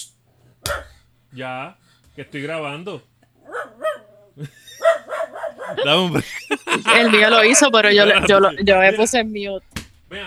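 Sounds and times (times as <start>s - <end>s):
dog barking: 0.7s - 1.0s, 3.4s - 4.2s, 4.8s - 5.9s
speech: 1.3s - 3.1s, 4.4s - 4.8s, 5.7s - 10.2s
laughter: 4.4s - 9.1s.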